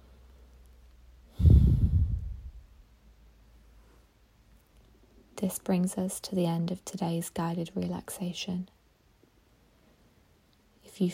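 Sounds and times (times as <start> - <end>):
deep breath taken during a guided relaxation: 1.3 - 2.6
speech: 5.4 - 8.8, 11.0 - 11.1.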